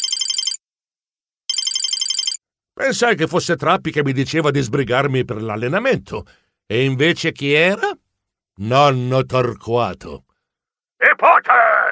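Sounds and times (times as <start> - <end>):
mobile phone ringing on the way back to a tennis court: 0.0 - 0.6, 1.5 - 2.4
speech: 2.8 - 8.0, 8.6 - 10.3, 11.2 - 11.9.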